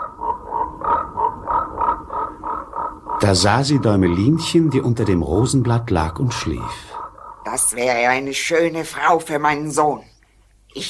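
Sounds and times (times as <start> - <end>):
toad croaking: 0.0 - 8.4
speech: 3.2 - 10.1.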